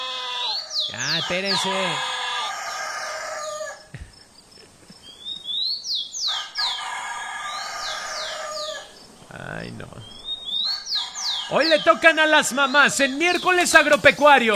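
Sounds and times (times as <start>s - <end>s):
rooster crowing: 0.0s - 4.0s, 6.2s - 9.2s, 10.0s - 14.5s
small birds chirping: 0.0s - 14.5s
speech: 0.9s - 2.1s, 11.5s - 14.5s.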